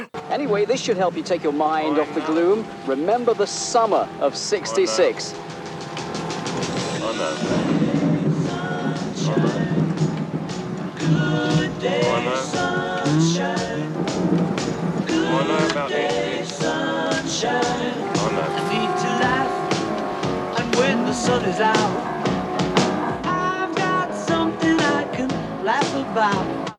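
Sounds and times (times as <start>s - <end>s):
speech: 0.4s - 5.5s, 7.1s - 7.8s, 21.2s - 22.2s, 25.7s - 26.7s
upbeat pop song cover with singing and full band: 7.0s - 26.7s.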